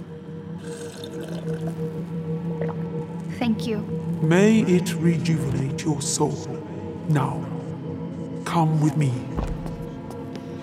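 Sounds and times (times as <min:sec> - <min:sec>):
person drinking water: 0:00.6 - 0:01.9, 0:02.5 - 0:02.9
speech: 0:03.4 - 0:07.5, 0:08.5 - 0:09.6.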